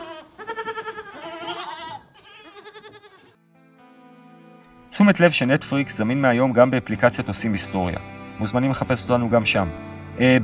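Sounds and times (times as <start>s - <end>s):
sheep bleating: 0.0s - 3.4s
speech: 5.0s - 10.4s.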